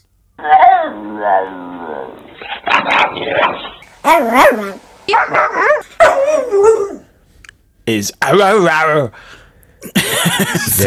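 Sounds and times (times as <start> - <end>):
speech: 0.4 - 7.0, 7.9 - 10.8
person imitating a dog howling and whining: 0.4 - 7.1
laughter: 9.8 - 10.8.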